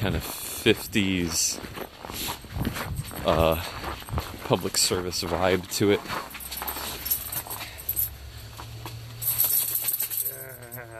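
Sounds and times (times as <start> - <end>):
speech: 0.0 - 2.4, 3.2 - 3.8, 4.5 - 6.3
keys jangling while dug out of a jeans pocket: 6.3 - 8.2, 9.1 - 10.9.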